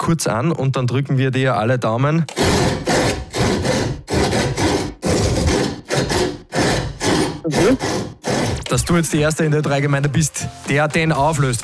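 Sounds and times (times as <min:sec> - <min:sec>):
speech: 0:00.0 - 0:03.2, 0:07.6 - 0:08.0, 0:08.7 - 0:11.6
rhythmic saw strokes arranged like a tune: 0:02.3 - 0:10.8.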